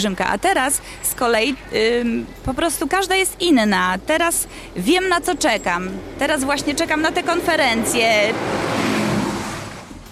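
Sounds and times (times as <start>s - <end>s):
speech: 0.0s - 8.7s
car speeding past with loud engine roar: 5.0s - 10.1s.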